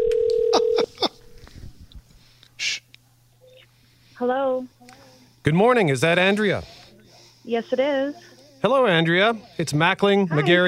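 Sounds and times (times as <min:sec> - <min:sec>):
telephone ringing tone over the line: 0:00.0 - 0:00.9
brief breathy hiss: 0:03.7 - 0:10.0
speech: 0:04.2 - 0:04.8, 0:05.5 - 0:06.8, 0:07.4 - 0:10.6.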